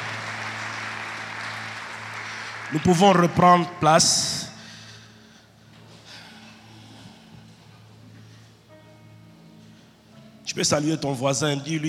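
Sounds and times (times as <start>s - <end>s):
congregation clapping: 0.0s - 4.2s
speech: 2.7s - 4.4s, 10.6s - 11.8s.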